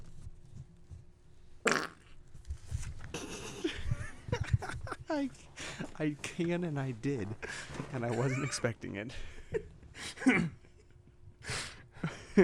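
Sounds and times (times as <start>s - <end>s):
loud drawn-out fart: 1.7s - 2.2s
burst of laughter: 3.1s - 5.3s, 7.1s - 10.8s, 12.0s - 12.4s
speech: 5.1s - 9.7s.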